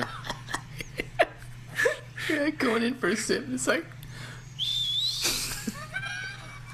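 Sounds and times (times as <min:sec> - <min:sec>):
laughter: 0:00.0 - 0:02.5, 0:05.2 - 0:06.7
speech: 0:02.3 - 0:04.0
nasal whistle while sniffing the aroma of a drink: 0:04.6 - 0:05.4.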